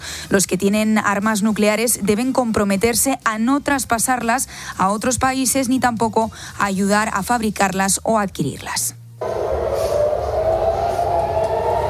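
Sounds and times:
speech: 0.3 - 9.7
air raid siren wailing: 9.2 - 11.8.

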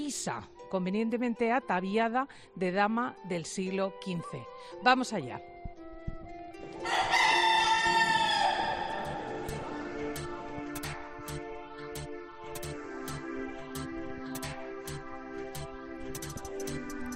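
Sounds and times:
speech: 0.1 - 5.5
rooster crowing in the rooster area of a cathedral in Spain: 6.8 - 9.8.

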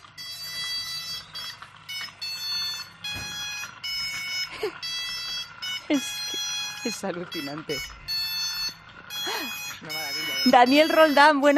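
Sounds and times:
homemade remote-control car horn playing a buzzy electronic melody: 0.2 - 11.5
speech: 5.9 - 6.2, 6.8 - 8.0, 9.8 - 11.5.

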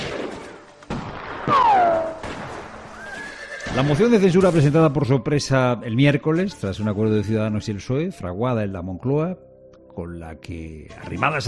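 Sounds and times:
Western-style gunshots: 0.0 - 3.0
whining ricochet sliding downward in pitch: 1.4 - 3.3
speech: 1.5 - 1.9, 3.7 - 11.4.

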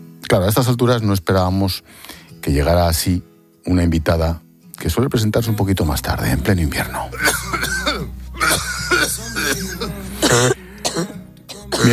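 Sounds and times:
speech: 0.3 - 7.6
person coughing in harsh bursts: 7.1 - 11.9
throat clearing: 7.2 - 11.9.

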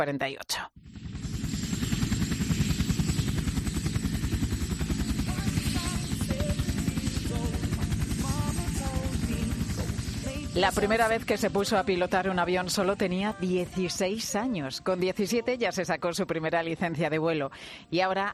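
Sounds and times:
speech: 0.0 - 0.9, 10.6 - 18.3
helicopter engine whine: 0.8 - 13.9
Bell 47 helicopter rotor thumping: 0.8 - 15.3.

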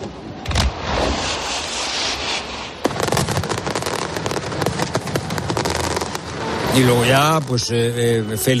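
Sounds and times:
fireworks exploding in a dense barrage: 0.0 - 8.5
speech: 6.8 - 8.5.

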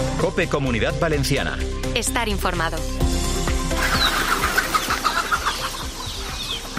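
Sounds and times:
speech: 0.2 - 3.1
chickens clucking: 3.8 - 6.7.

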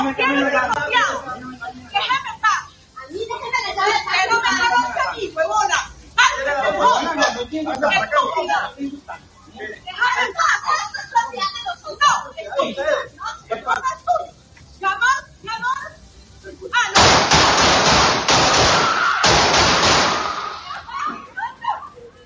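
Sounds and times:
neighbors talking during a dispute in Costa Rica: 0.0 - 17.0
laughter: 12.5 - 14.4, 20.3 - 22.2
pistol gunshots in a neighbor dispute in Costa Rica: 17.0 - 20.4.

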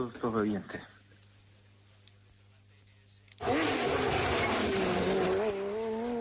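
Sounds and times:
speech: 0.0 - 1.0
rally car engine roaring: 3.4 - 6.2.

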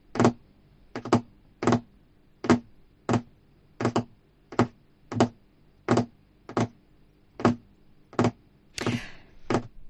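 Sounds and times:
fingernails tapping on a table: 0.1 - 6.8, 7.4 - 8.4.

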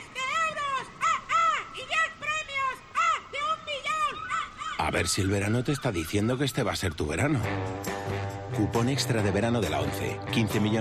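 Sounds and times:
seagull calling: 0.2 - 7.6
speech: 4.9 - 7.9, 8.6 - 10.7.

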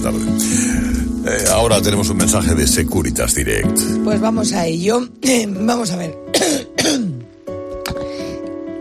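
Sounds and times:
speech: 0.0 - 7.1
person coughing: 6.3 - 7.2.

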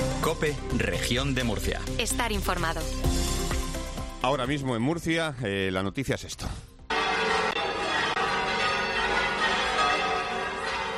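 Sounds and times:
speech: 0.2 - 3.3, 4.2 - 6.7
cathedral church bells pealing: 6.9 - 10.9.

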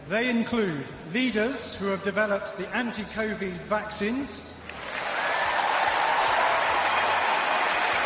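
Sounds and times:
speech: 0.1 - 4.6
large standing audience applauding at a tennis match in London: 4.7 - 8.0.

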